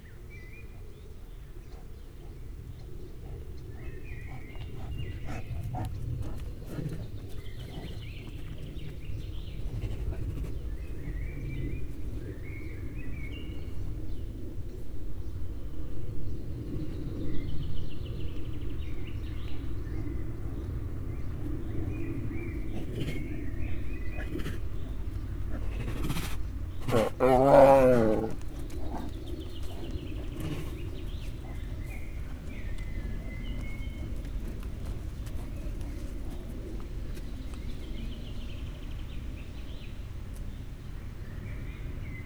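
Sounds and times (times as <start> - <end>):
Bengal tiger at a zoo: 0.3 - 14.0, 19.9 - 39.1
airplane over a zoo: 0.8 - 42.2.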